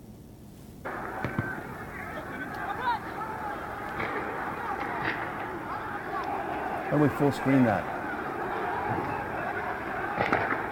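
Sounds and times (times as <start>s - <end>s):
street and crowd noise with voices: 0.8s - 10.7s
gunfire from live ammunition fired in a street: 3.9s - 5.5s, 8.8s - 10.7s
speech: 6.9s - 8.0s.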